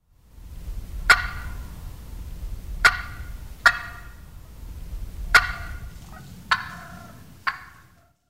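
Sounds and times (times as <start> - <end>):
turkey call clucking: 1.0 - 1.8, 2.8 - 4.4, 5.3 - 8.2.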